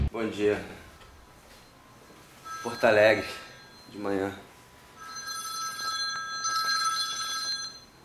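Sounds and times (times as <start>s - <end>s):
speech: 0.2s - 0.8s, 2.7s - 4.5s
telephone bell ringing in Porto Alegre: 2.4s - 4.2s, 4.9s - 8.0s.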